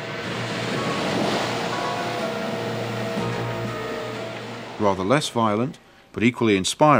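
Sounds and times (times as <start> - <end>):
wind buffeting: 0.0 - 5.7
ocean waves crashing against the coast: 0.0 - 6.0
speech: 4.8 - 6.9.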